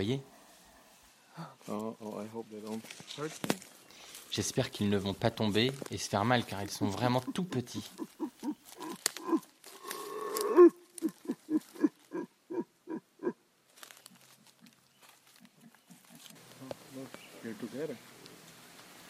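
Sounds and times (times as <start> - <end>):
speech: 0.0 - 0.3, 1.4 - 9.4
quieter wavering calls: 6.9 - 18.3
howler monkeys roaring: 7.2 - 13.4.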